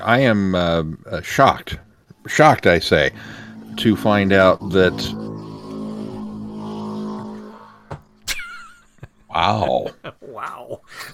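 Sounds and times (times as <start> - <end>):
speech: 0.0 - 5.3, 9.3 - 11.1
sharp bursts of noise: 2.4 - 8.4
loud motorcycle engine rumbling by on a street: 2.6 - 8.3.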